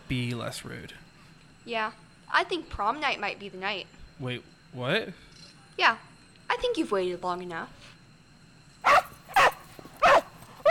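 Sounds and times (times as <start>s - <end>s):
speech: 0.1s - 8.0s
dog barking: 8.8s - 10.7s.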